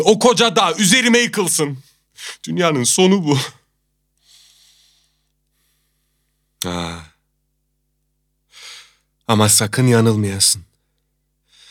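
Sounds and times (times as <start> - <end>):
speech: 0.0 - 3.6, 6.6 - 7.1, 9.3 - 10.7
person breathing: 4.2 - 6.5, 8.5 - 9.1, 11.4 - 11.6.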